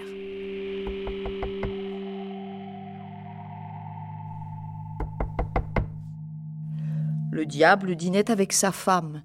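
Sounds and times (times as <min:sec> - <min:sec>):
low sustained eerie musical drone: 0:00.0 - 0:09.2
quick loud knocks on a door: 0:05.0 - 0:06.0
speech: 0:07.4 - 0:09.2.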